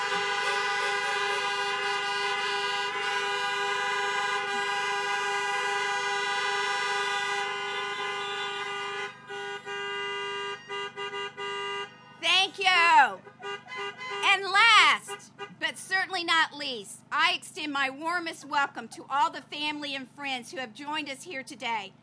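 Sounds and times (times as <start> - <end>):
graduates honking car horns: 0.0 - 16.0
speech: 15.7 - 22.0.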